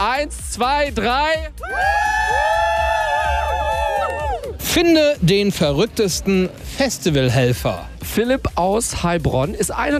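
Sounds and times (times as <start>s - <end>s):
speech: 0.1s - 2.6s, 4.7s - 9.9s
festival crowd screaming and cheering before a stage: 1.5s - 5.2s.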